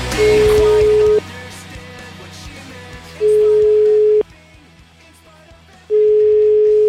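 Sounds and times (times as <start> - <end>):
ringback tone of an outgoing telephone call: 0.2 - 1.2, 3.2 - 4.2, 5.9 - 6.8.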